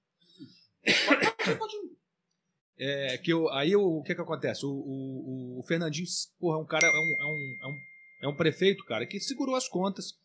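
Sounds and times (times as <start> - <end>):
person clearing throat: 0.9 - 1.8
person coughing in harsh bursts: 0.9 - 1.8
speech: 2.8 - 10.2.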